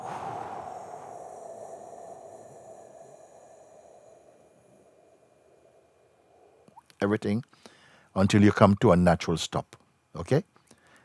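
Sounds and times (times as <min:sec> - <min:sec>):
slow breath pushed out through clenched teeth: 0:00.0 - 0:06.8
speech: 0:07.0 - 0:10.6.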